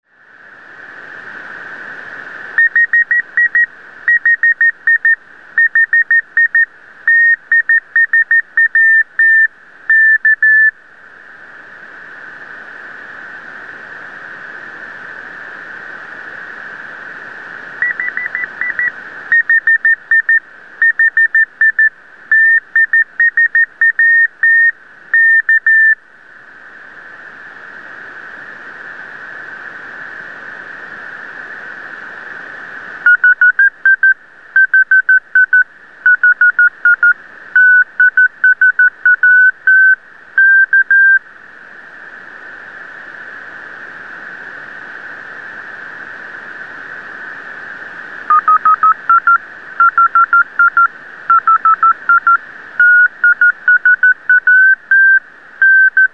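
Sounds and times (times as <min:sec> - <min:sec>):
TIsat-1 satellite CW beacon tones: 0:02.6 - 0:10.8, 0:17.8 - 0:26.0, 0:33.1 - 0:41.2, 0:48.3 - 0:56.1.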